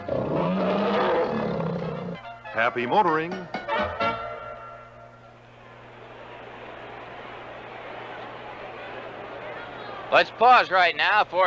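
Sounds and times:
tiger roaring: 0:00.0 - 0:02.2
speech: 0:02.6 - 0:04.2, 0:10.1 - 0:11.4.

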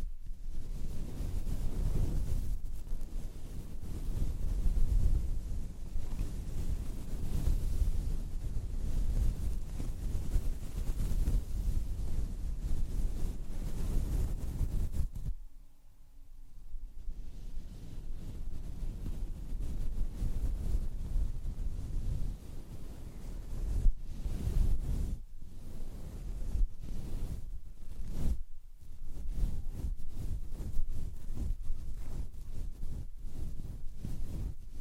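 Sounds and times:
fuzzy microphone wind cover brushed and stroked hard: 0:00.0 - 0:15.4, 0:16.7 - 0:34.8.

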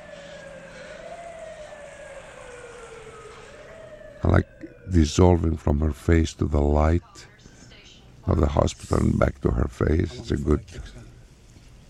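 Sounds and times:
police siren wailing: 0:00.0 - 0:07.0
low traffic rumble: 0:00.0 - 0:11.8
speech: 0:04.2 - 0:07.3, 0:08.3 - 0:11.0.

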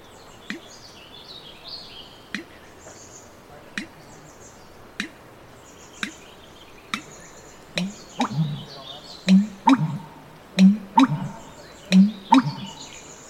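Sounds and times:
faint sharp clicks: 0:02.3 - 0:02.6, 0:03.8 - 0:04.1, 0:05.0 - 0:05.2, 0:06.9 - 0:07.1, 0:07.7 - 0:08.6, 0:09.3 - 0:12.8
American bittern giving its low hollow gulping booming call: 0:07.8 - 0:13.0.

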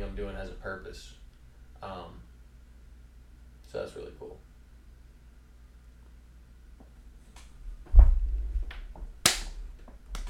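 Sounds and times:
speech: 0:00.2 - 0:01.2, 0:01.8 - 0:02.3, 0:03.7 - 0:04.5
hands slapping in a slap bump: 0:08.7 - 0:10.2.

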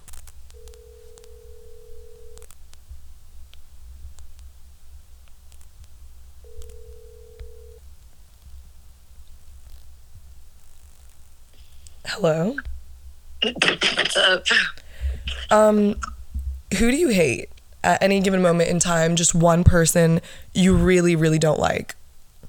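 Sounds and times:
ringback tones of an outgoing phone call: 0:00.6 - 0:02.4, 0:06.4 - 0:07.8
speech: 0:12.2 - 0:12.7, 0:13.4 - 0:16.1, 0:16.7 - 0:22.0.

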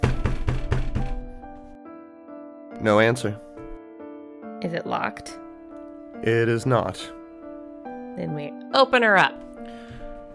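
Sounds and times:
heavy hollow knocks on a wooden door: 0:00.0 - 0:01.7
speech: 0:02.8 - 0:03.5, 0:04.6 - 0:05.4, 0:06.2 - 0:07.2, 0:08.2 - 0:09.8.

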